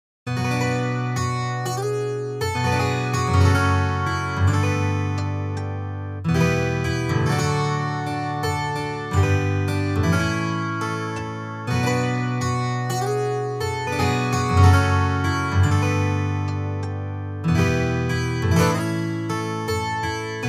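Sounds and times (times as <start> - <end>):
12-string guitar: 0.3 - 20.4.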